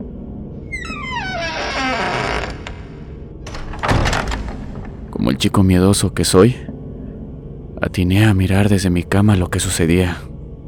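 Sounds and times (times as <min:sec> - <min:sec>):
bathroom door creaking slowly open: 0:00.6 - 0:05.2
speech: 0:05.2 - 0:06.7, 0:07.8 - 0:10.3.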